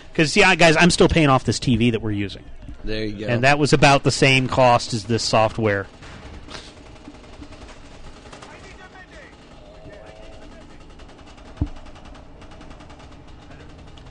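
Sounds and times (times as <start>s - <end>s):
speech: 0.2s - 6.6s
gunfire from a shooting video game: 4.0s - 14.0s.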